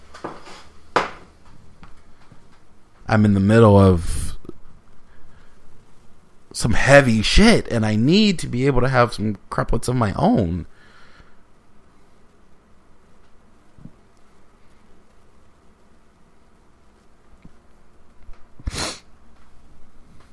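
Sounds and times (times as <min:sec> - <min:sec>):
low steady buzzing: 0:00.0 - 0:20.3
speech: 0:03.1 - 0:04.2, 0:06.6 - 0:10.7
person sniffling: 0:18.6 - 0:19.1.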